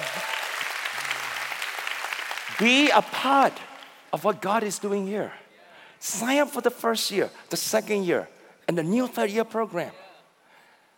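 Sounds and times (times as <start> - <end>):
room full of people clapping: 0.0 - 4.2
speech: 2.6 - 5.4, 6.0 - 10.0.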